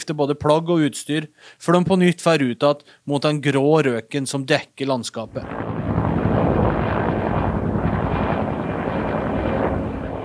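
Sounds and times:
speech: 0:00.1 - 0:05.9
helicopter flying over wildfire: 0:05.3 - 0:10.2.

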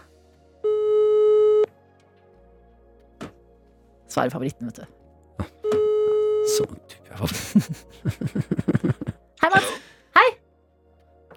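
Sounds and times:
telephone ringback tone while placing a call: 0:00.6 - 0:01.7, 0:05.6 - 0:06.6
speech: 0:04.2 - 0:05.0, 0:06.6 - 0:09.9
laughter: 0:07.2 - 0:09.9.

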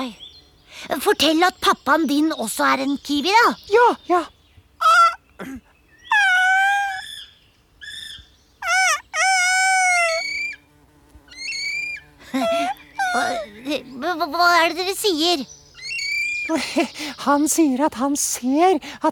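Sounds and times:
speech: 0:00.0 - 0:00.2, 0:00.8 - 0:04.4, 0:05.4 - 0:05.6, 0:14.2 - 0:15.6, 0:16.5 - 0:19.0
shrill wavering kiwi bird calls: 0:01.6 - 0:10.6, 0:11.3 - 0:17.4
laughter: 0:12.2 - 0:13.6.

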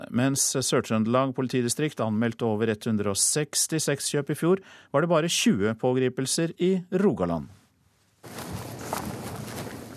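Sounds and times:
speech: 0:00.1 - 0:07.6
dense rustling background: 0:08.1 - 0:09.9
brisk footsteps of two police detectives walking toward a wooden house in Løten Hedmark: 0:08.2 - 0:09.9.

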